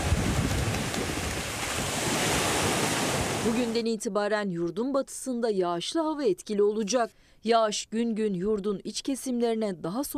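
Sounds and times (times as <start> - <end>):
wind rumble at a beach: 0.0 - 3.7
waves and surf washing at a beach in Antalya Turkey in warm weather: 0.0 - 3.8
speech: 3.5 - 10.1.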